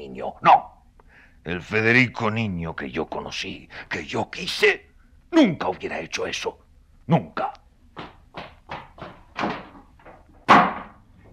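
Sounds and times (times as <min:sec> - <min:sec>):
speech: 0:00.1 - 0:00.7, 0:01.4 - 0:08.1
hollow knocks and thuds: 0:08.0 - 0:11.3
door slammed shut: 0:09.4 - 0:09.7, 0:10.4 - 0:11.0.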